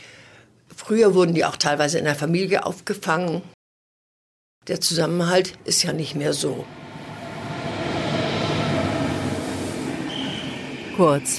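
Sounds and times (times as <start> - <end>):
speech: 0.9 - 3.6, 4.7 - 6.8, 11.0 - 11.3
Intercity train wheels rumbling on track pulling into station platform: 6.4 - 11.3
thin high train brake squeal: 7.5 - 11.3.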